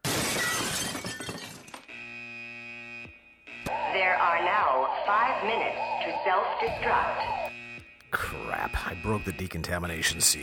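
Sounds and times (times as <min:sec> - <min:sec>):
diner plate glass window shattered by a thrown glass sugar dispenser: 0:00.0 - 0:01.8
speech: 0:04.1 - 0:07.4, 0:08.1 - 0:10.4.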